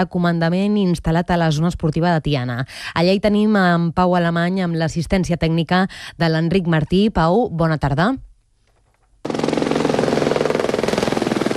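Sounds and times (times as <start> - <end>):
speech: 0.0 - 8.3
firefighting helicopter rotor thudding overhead: 9.2 - 11.5.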